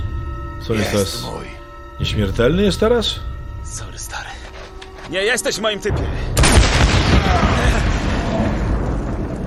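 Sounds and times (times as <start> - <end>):
speech: 0.6 - 4.3, 5.1 - 6.4
loud explosion with deep roaring rumble: 6.4 - 9.4.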